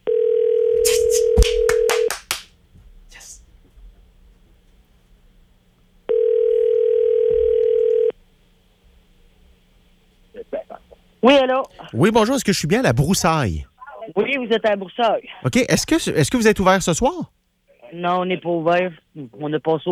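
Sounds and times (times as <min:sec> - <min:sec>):
telephone ring tones on an outgoing call: 0:00.0 - 0:02.1, 0:06.1 - 0:08.1
speech: 0:11.2 - 0:13.7, 0:14.4 - 0:19.9.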